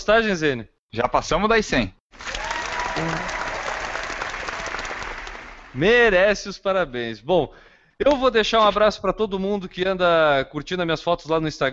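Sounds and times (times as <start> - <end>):
speech: 0.0 - 2.3, 3.0 - 3.4, 5.8 - 11.7
group applauding with many hands clapping densely: 2.1 - 5.9.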